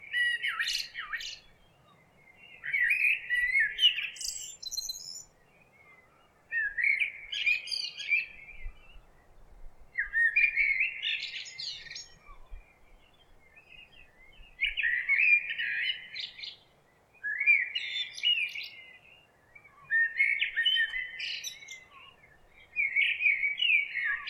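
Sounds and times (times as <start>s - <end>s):
bird song: 0.0s - 24.2s.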